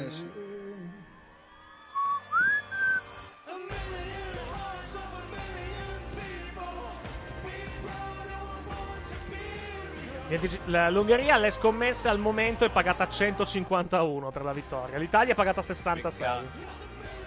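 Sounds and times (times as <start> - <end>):
speech: 0.0 - 0.4, 10.3 - 16.9
whistling at the end of a song: 1.9 - 3.2.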